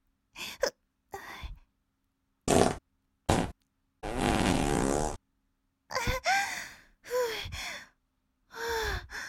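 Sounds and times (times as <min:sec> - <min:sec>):
loud farts from a woman: 0:02.5 - 0:05.2
woman's short breathy sighs and gasps: 0:05.9 - 0:09.2.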